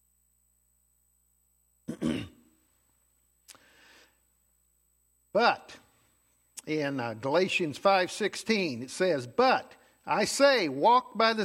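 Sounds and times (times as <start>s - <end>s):
person with a tickle in the throat clearing throat: 1.9s - 2.6s
soft breath: 3.5s - 4.3s
speech: 5.4s - 5.8s, 6.6s - 11.4s.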